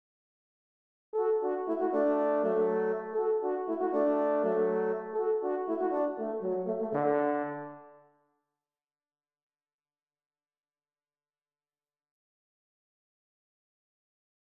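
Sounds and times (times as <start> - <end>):
horn section: 1.2 - 8.0.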